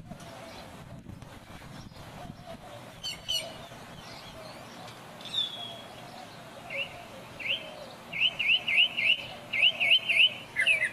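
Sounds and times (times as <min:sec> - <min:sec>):
Northern mockingbird song: 0:00.0 - 0:10.9.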